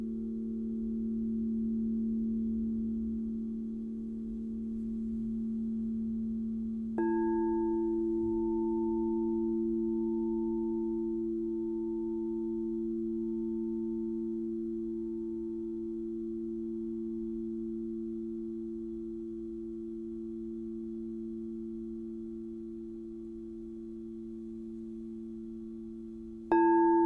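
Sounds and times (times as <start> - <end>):
crystal singing bowl humming with a steady low tone: 0.0 - 27.0
second crystal singing bowl struck with a bright ring: 5.5 - 14.3, 26.5 - 27.0.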